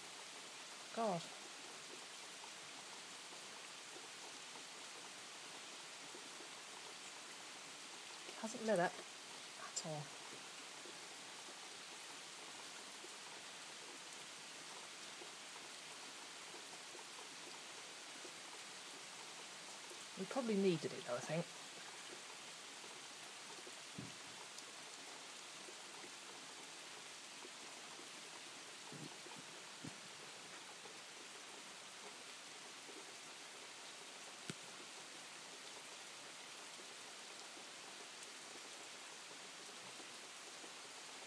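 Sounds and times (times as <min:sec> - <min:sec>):
steady rain: 0:00.0 - 0:41.2
speech: 0:01.0 - 0:01.5, 0:08.4 - 0:09.1, 0:09.8 - 0:10.2, 0:20.2 - 0:21.5.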